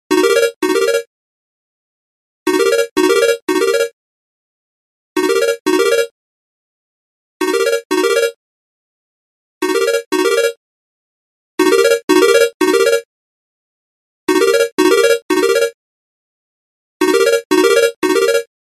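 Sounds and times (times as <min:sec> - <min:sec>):
Nokia classic mobile phone ringtone: 0:00.1 - 0:01.1, 0:02.5 - 0:04.0, 0:05.2 - 0:06.2, 0:07.4 - 0:08.4, 0:09.6 - 0:10.6, 0:11.6 - 0:13.1, 0:14.3 - 0:15.8, 0:17.0 - 0:18.5.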